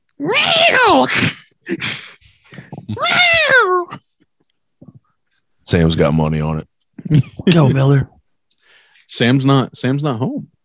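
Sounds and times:
fighting cats wailing meows: 0.2 - 1.1, 2.8 - 4.0
fighting cats yelping harshly: 0.2 - 1.4, 2.6 - 4.0
speech: 0.2 - 1.9, 5.7 - 8.2, 9.1 - 10.5.

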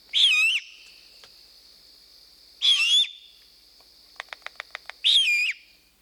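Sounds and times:
owl fledglings giving begging screeches in Telluride: 0.2 - 0.7, 2.6 - 3.2, 5.0 - 5.6.

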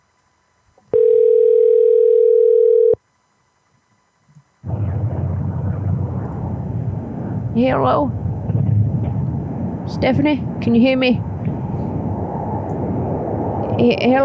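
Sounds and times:
steady telephone tone of a call going to voicemail: 0.9 - 3.0
loud rough burst of noise on a telephone voicemail line: 4.6 - 14.2
speech: 7.6 - 8.2, 9.9 - 11.2, 13.8 - 14.2.

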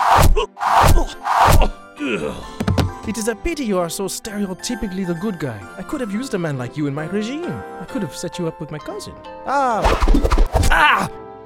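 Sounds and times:
arrows thudding into a target: 0.0 - 1.7
person grunting in pain: 0.3 - 2.6, 10.6 - 11.2
person groaning: 0.4 - 2.6, 10.7 - 11.2
speech: 3.1 - 11.2.

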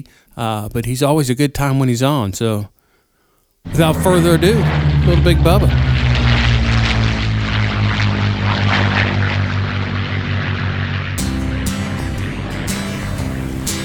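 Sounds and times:
speech: 0.0 - 2.8, 3.6 - 6.0
rushing wind noise: 3.7 - 10.0
propeller airplane flying: 3.7 - 13.8.

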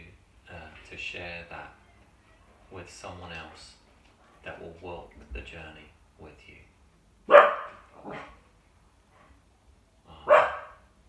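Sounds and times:
speech: 1.0 - 1.8, 2.7 - 3.8, 4.4 - 6.7, 8.0 - 8.4
dog barking: 7.3 - 8.4, 10.2 - 10.9.

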